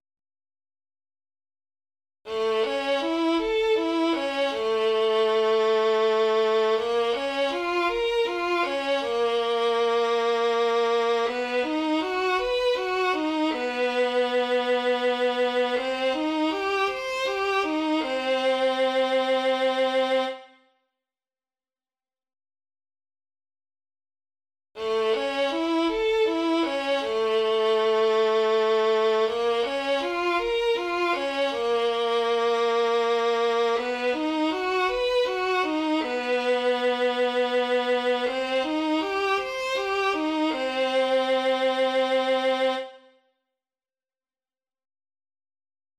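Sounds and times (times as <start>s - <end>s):
arpeggios alternating major and minor as music warmups: 2.3s - 20.3s, 24.8s - 42.9s.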